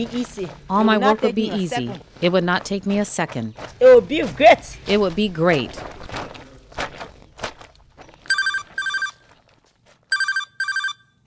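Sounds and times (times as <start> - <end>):
speech: 0.0 - 6.0
shuffling steps: 0.0 - 10.4
mobile phone ringing with a bright electronic trill: 8.3 - 9.3, 10.1 - 11.2.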